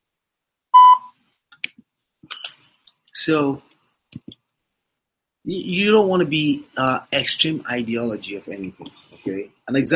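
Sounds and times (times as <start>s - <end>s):
voicemail beep on a phone call: 0.8s - 1.1s
speech: 3.2s - 3.7s, 5.5s - 9.9s.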